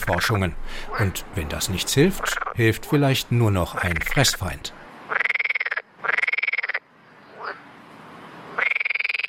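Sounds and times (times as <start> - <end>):
speech: 0.1 - 4.8
frog croaking in buzzy pulses: 0.8 - 3.0, 3.6 - 7.6, 8.6 - 9.2.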